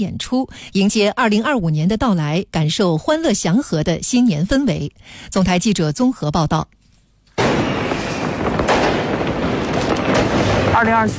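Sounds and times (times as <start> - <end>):
speech: 0.0 - 6.8, 10.8 - 11.1
fireworks bursting at New Year's Eve celebration in China: 7.4 - 11.1.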